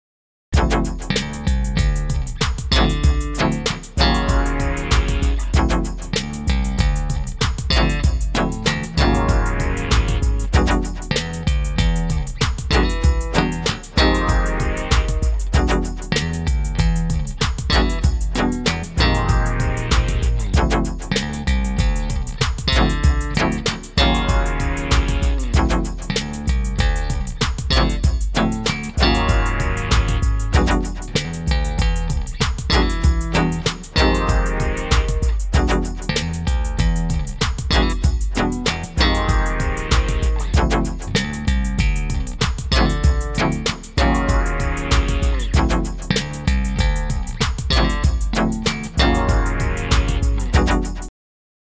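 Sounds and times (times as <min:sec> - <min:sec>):
sampler beat mixed with bass: 0:00.6 - 0:51.1.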